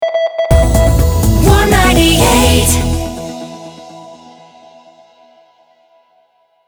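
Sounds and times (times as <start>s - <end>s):
jingle stinger in C at 124 bpm: 0.5s - 4.8s.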